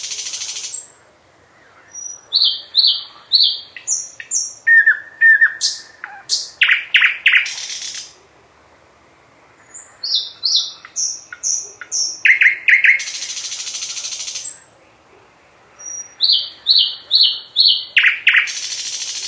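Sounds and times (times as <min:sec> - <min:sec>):
nightingale singing: 0:00.0 - 0:08.4, 0:09.5 - 0:19.2.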